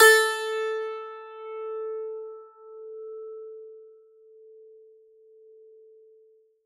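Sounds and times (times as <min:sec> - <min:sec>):
plucked string: 0:00.0 - 0:02.1.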